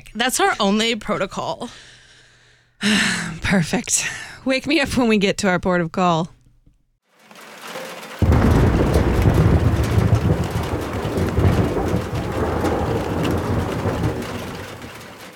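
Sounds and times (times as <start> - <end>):
speech: 0.1 - 2.0, 2.8 - 6.4
sustained roar of heavy downpour: 7.1 - 15.3
loud crack of thunder: 8.2 - 15.3.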